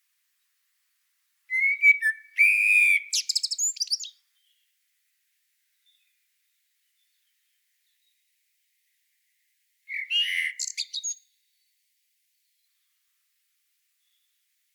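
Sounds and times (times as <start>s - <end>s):
common blackbird Turdus merula song: 1.3s - 4.9s, 5.6s - 8.4s, 9.2s - 13.2s, 13.9s - 14.7s.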